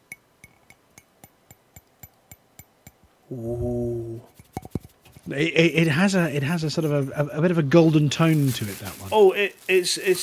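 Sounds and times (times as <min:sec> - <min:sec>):
golden glittery metal frame shift plate being tapped: 0:00.0 - 0:03.2, 0:04.3 - 0:05.3
speech: 0:03.3 - 0:04.4, 0:05.3 - 0:10.2.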